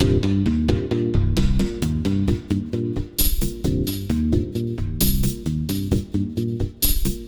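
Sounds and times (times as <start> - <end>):
funky music loop: 0.0 - 7.2.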